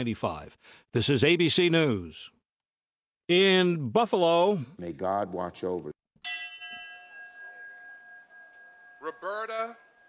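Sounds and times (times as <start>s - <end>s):
speech: 0.0s - 2.4s, 3.3s - 6.0s
bell rung at a memorial in Buffalo: 6.2s - 10.0s.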